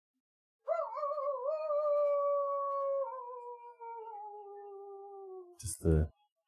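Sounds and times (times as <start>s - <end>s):
long vocal howl: 0.6s - 5.6s.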